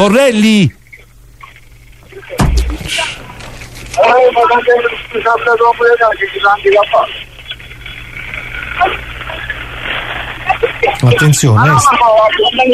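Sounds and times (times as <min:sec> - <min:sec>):
speech: 0:00.0 - 0:00.8, 0:04.0 - 0:07.2, 0:08.8 - 0:09.1, 0:10.8 - 0:12.7
heavy thump: 0:02.4 - 0:03.2.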